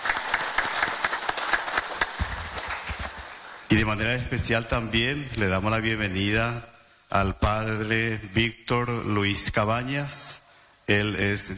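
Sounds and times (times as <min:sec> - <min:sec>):
audience applauding for Children's Day: 0:00.0 - 0:03.7
speech: 0:03.7 - 0:11.5.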